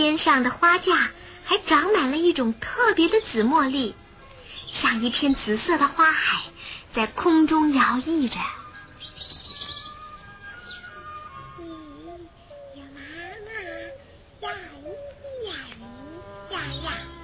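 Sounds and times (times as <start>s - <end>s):
soft steady noise: 0.0s - 17.2s
speech: 0.2s - 4.0s, 4.7s - 8.6s
small bird chirping: 4.2s - 5.5s, 7.7s - 13.1s, 14.8s - 17.2s
voices rising and falling: 8.0s - 17.2s.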